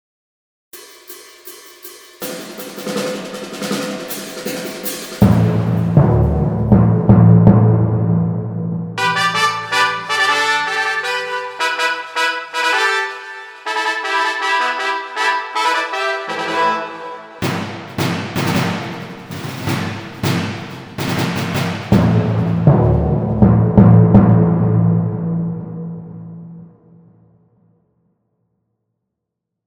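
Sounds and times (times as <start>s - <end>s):
timpani: 0.8s - 27.3s
trumpets: 9.0s - 22.6s.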